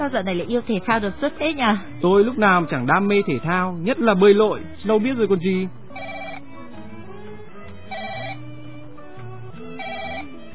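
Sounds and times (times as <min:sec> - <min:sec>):
speech: 0:00.0 - 0:06.2
phone ringtone ringing: 0:05.9 - 0:06.7, 0:07.9 - 0:08.7, 0:09.7 - 0:10.5.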